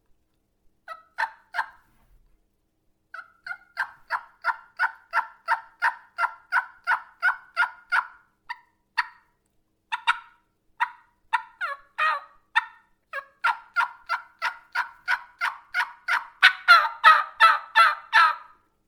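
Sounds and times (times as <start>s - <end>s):
plain turkey hen yelps made with a mouth call: 0.9s - 1.8s, 3.2s - 9.3s, 9.9s - 18.6s.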